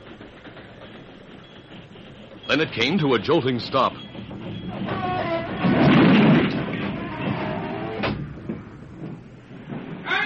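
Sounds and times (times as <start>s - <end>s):
train rumbling along the rails: 0.0s - 10.2s
speech: 2.5s - 4.1s.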